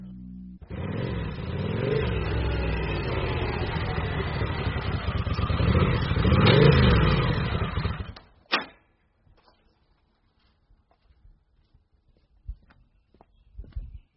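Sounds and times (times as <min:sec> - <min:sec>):
motorcycle engine idling and revving outside a house: 0:00.0 - 0:08.2.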